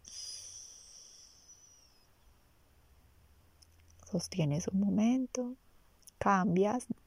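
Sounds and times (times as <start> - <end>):
airy inhalation through the right nostril with the left nostril closed: 0.0 - 1.6
speech: 4.1 - 5.6, 6.2 - 7.0.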